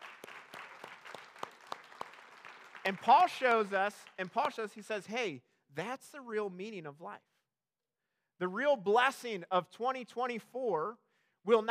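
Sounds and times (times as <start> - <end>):
roomful of people applauding: 0.0 - 4.8
speech: 2.9 - 7.3, 8.4 - 11.6.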